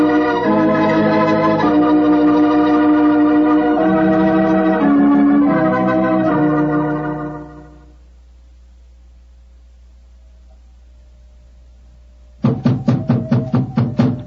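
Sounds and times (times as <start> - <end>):
faint hum: 0.0 - 14.2
knocking on the door of an elephant house: 12.4 - 14.2.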